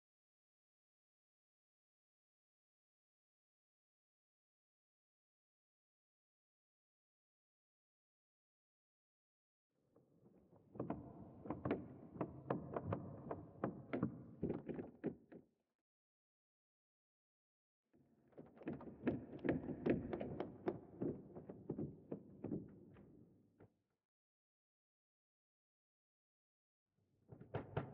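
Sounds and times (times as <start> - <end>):
wood creaking: 10.8 - 15.4, 18.4 - 23.2.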